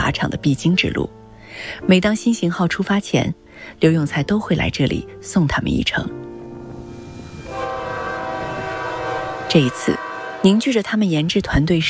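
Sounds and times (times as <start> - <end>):
speech: 0.1 - 6.3, 9.5 - 11.8
train running on a railway line: 5.9 - 11.8
sustained horn-like tone: 6.3 - 11.0.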